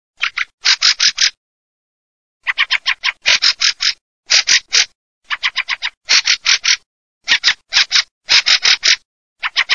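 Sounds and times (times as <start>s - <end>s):
fieldfare chattering: 0.2s - 1.4s, 2.4s - 9.7s.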